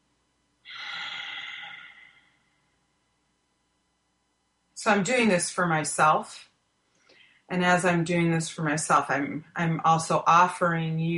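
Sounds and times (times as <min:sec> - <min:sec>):
deep breath in during a group breathing prompt: 0:00.7 - 0:02.6
speech: 0:04.8 - 0:06.5, 0:07.5 - 0:11.1.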